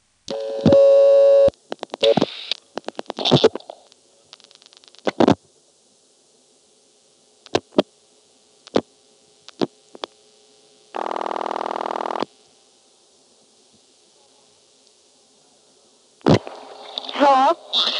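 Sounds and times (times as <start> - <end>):
telephone line tone: 0.3 - 2.2, 11.0 - 12.3
brief activity: 1.6 - 5.5, 13.4 - 17.9.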